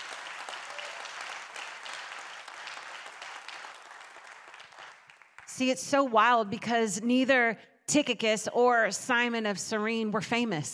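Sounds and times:
sizable audience applauding: 0.0 - 5.5
speech: 5.6 - 10.7.

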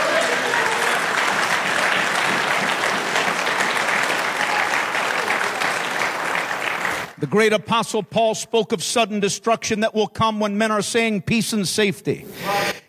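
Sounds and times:
large audience applauding: 0.0 - 7.2
speech: 7.2 - 12.8.

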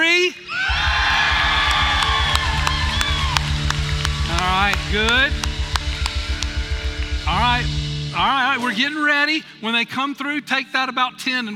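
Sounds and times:
large crowd cheering and yelling with whoops and shouts: 0.4 - 7.7
speech: 7.6 - 11.5.

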